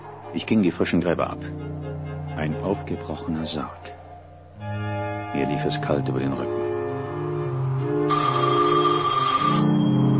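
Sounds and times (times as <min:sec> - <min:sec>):
low steady droning background: 0:00.0 - 0:10.1
speech: 0:00.3 - 0:01.8, 0:02.4 - 0:04.0, 0:05.3 - 0:06.6, 0:08.0 - 0:08.3
telephone ringing in a gravedigger's house at a cemetery: 0:08.1 - 0:10.1.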